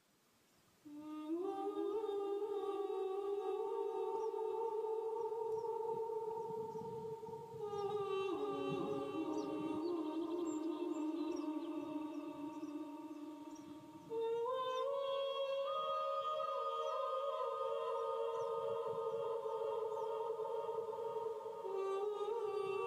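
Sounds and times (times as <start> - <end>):
person singing an Irish folk song a cappella with kulning: 0.8 - 22.8
birds chirping on a prairie: 3.4 - 22.8.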